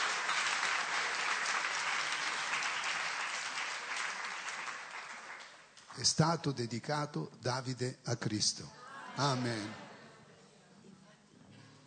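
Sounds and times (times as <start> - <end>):
congregation applauding: 0.0 - 6.1
speech: 6.0 - 9.9.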